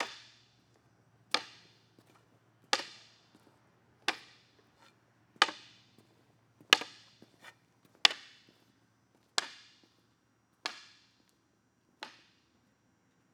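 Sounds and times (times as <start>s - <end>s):
foley footsteps walking with a cane: 0.0s - 10.0s.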